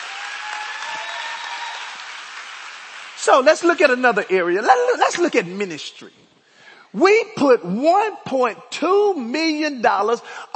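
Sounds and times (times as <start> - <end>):
large group applauding: 0.0 - 4.4
speech: 3.2 - 10.5.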